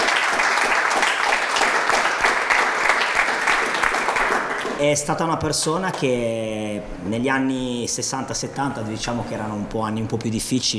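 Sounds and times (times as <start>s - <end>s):
audience applause: 0.0s - 4.8s
speech: 4.8s - 10.7s.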